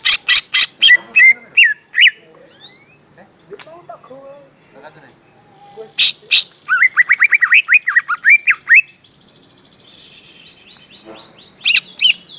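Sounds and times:
greater green leafbird song: 0:00.0 - 0:12.3.

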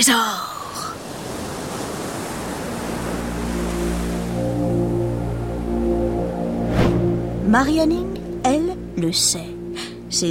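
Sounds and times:
speech: 0:00.0 - 0:00.6, 0:07.5 - 0:10.2
sea waves washing onto a windy beach below tall cliffs on England's south coast: 0:00.4 - 0:06.7
continuous low drone: 0:02.7 - 0:10.2.

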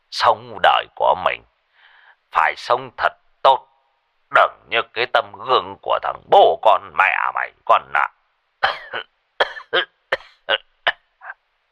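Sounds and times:
speech: 0:00.1 - 0:01.5, 0:02.3 - 0:03.7, 0:04.3 - 0:09.1, 0:09.7 - 0:09.9
ill old man coughing heavily over a phone line: 0:08.6 - 0:11.4.

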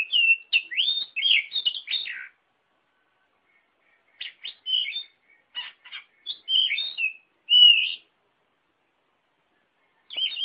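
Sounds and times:
Oriental magpie-robin singing: 0:00.0 - 0:02.4, 0:03.2 - 0:08.2, 0:09.6 - 0:10.4.

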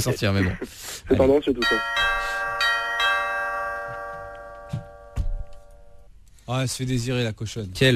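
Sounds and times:
speech: 0:00.0 - 0:02.0, 0:06.5 - 0:07.9
old doorbell ringing: 0:01.6 - 0:06.1.

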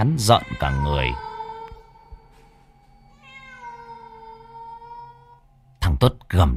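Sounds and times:
speech: 0:00.0 - 0:01.3, 0:06.0 - 0:06.5
cat meowing: 0:00.2 - 0:02.3, 0:03.1 - 0:05.4.

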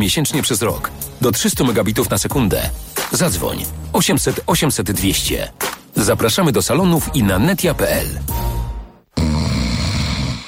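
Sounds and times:
speech: 0:00.0 - 0:08.6
snoring: 0:09.2 - 0:10.4.

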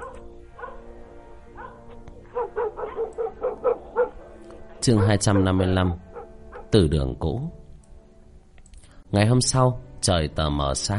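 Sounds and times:
dog whining yelps at night: 0:00.0 - 0:00.8, 0:01.6 - 0:04.3, 0:06.1 - 0:06.7
dog barking at night: 0:00.0 - 0:00.9, 0:01.6 - 0:04.4, 0:05.0 - 0:06.7
speech: 0:04.8 - 0:06.0, 0:06.7 - 0:07.6, 0:09.1 - 0:10.9.

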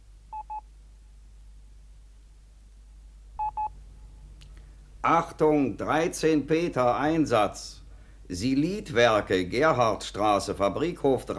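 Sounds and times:
faint low hum: 0:00.0 - 0:11.3
touch-tone telephone dialing beeps: 0:03.4 - 0:03.7
speech: 0:05.0 - 0:11.3.

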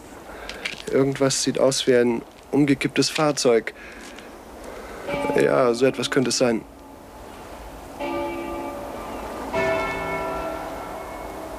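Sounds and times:
speech: 0:00.9 - 0:04.0, 0:05.4 - 0:06.8
church bells ringing: 0:05.0 - 0:07.4, 0:08.0 - 0:11.5.

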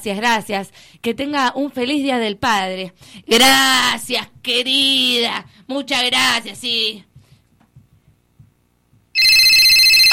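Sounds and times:
speech: 0:00.0 - 0:07.1
telephone ringtone: 0:09.2 - 0:10.1.

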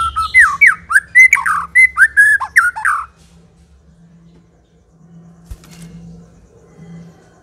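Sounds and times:
aggressive song of a white-rumped shama used as a lure: 0:00.0 - 0:03.2.

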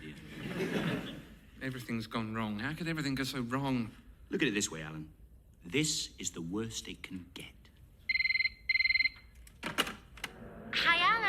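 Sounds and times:
laughter: 0:00.1 - 0:01.4
speech: 0:01.6 - 0:07.6
telephone ringing with warbling trilled bursts: 0:08.1 - 0:09.3.

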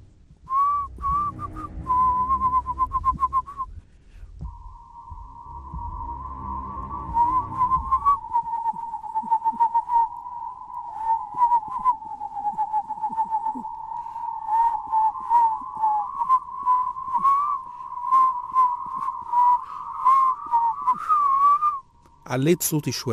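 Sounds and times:
low rumble: 0:00.0 - 0:14.9
man whistling a tune while walking: 0:00.5 - 0:03.7, 0:04.5 - 0:21.9
speech: 0:22.4 - 0:23.1.

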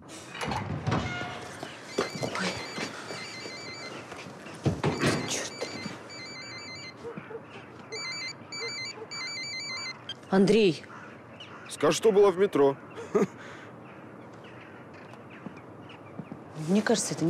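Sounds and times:
mobile phone ringing with an electronic melody: 0:01.9 - 0:04.2, 0:04.8 - 0:07.2, 0:07.9 - 0:10.2
speech: 0:10.3 - 0:10.9, 0:11.8 - 0:13.4, 0:16.7 - 0:17.2.

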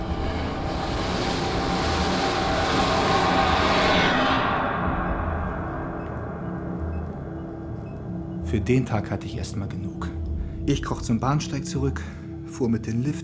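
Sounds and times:
train approaching and rushing past: 0:00.0 - 0:07.0
speech: 0:08.5 - 0:13.2.

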